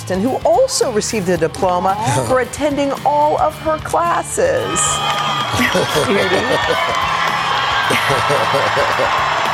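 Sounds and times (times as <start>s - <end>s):
speech: 0.1s - 7.2s, 7.9s - 9.4s
scattered laughter: 5.6s - 7.0s, 7.9s - 9.2s.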